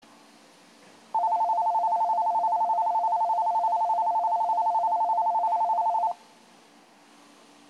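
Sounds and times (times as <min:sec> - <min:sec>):
platform 10 train departure bell at Sendai Station: 0:01.2 - 0:06.2.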